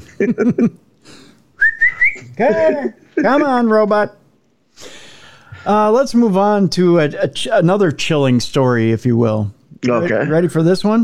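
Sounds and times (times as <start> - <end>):
speech: 0.2 - 0.9, 2.3 - 4.2, 5.6 - 11.0
person whistling to call a dog: 1.6 - 2.3.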